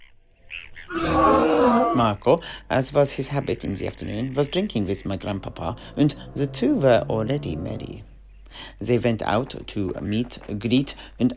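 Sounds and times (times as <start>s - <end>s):
loud rough creature roar: 0.9s - 2.0s, 5.2s - 8.1s
shrill creature calls: 0.9s - 2.2s, 4.9s - 8.1s
speech: 2.0s - 11.3s.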